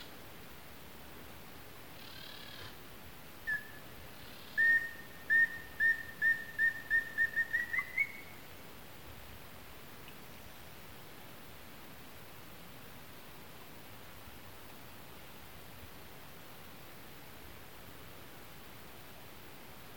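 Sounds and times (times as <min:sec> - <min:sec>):
Chestnut-naped antpitta Grallaria nuchalis ruficeps calling: 0:03.4 - 0:08.4.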